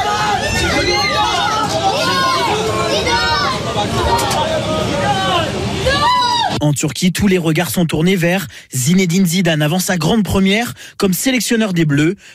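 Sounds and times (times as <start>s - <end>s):
crowd of onlookers chattering and calling out outdoors in front of a hotel: 0.0s - 6.6s
speech: 6.6s - 12.3s.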